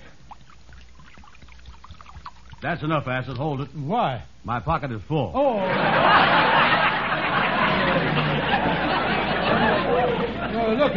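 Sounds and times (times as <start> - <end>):
liquid pouring from a jug: 0.0 - 3.8
speech: 2.6 - 6.9, 10.7 - 10.9
laughter: 5.6 - 10.9.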